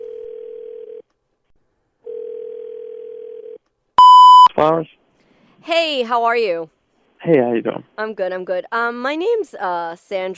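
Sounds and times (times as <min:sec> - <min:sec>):
telephone line tone while calling a number: 0:04.0 - 0:04.5
speech: 0:04.6 - 0:05.0, 0:05.6 - 0:10.3.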